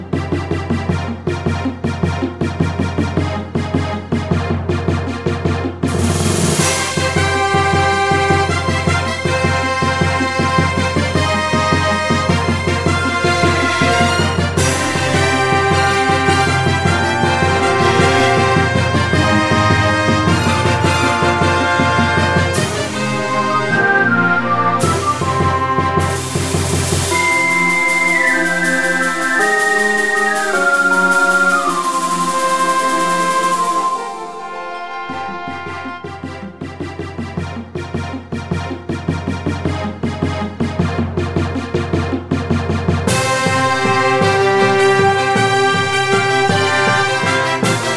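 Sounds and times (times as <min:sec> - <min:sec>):
orchestra playing: 0:00.1 - 0:41.7, 0:42.5 - 0:47.9
whistle melody: 0:05.9 - 0:36.0.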